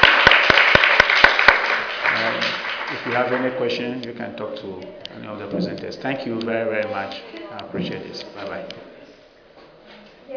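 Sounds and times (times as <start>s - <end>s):
sharp claps: 0.0s - 3.5s
audience applause at the close of a presentation session: 0.0s - 3.7s
speech: 3.0s - 8.9s.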